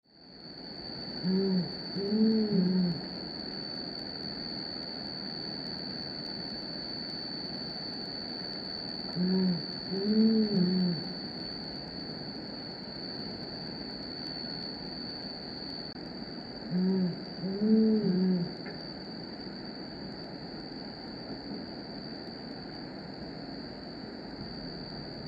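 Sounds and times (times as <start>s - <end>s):
Brown Fish Owl pair duetting: 1.2s - 3.1s, 9.1s - 11.2s, 16.6s - 18.6s.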